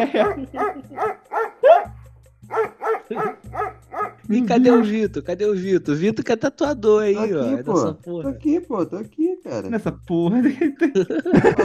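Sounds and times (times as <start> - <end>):
speech: 0.0 - 1.1, 4.3 - 11.6
laughter: 0.0 - 1.8, 10.3 - 11.6
dog barking: 0.1 - 1.9, 2.5 - 4.9.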